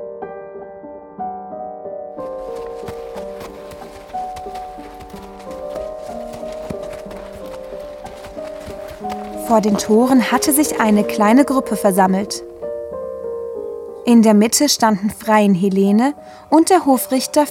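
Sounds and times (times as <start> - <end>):
sustained musical backdrop: 0.0 - 17.5
horse hooves clip-clopping at a riding pace: 2.2 - 11.7
speech: 9.5 - 12.5, 14.1 - 17.5.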